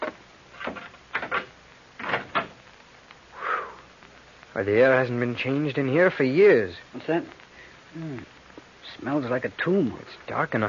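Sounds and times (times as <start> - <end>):
door creaking as it swings: 0.0 - 2.6
speech: 4.6 - 10.6.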